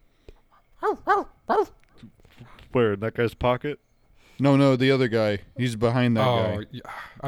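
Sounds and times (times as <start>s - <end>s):
dog barking in a video game: 0.8s - 1.8s
speech: 2.8s - 3.8s, 4.4s - 7.2s.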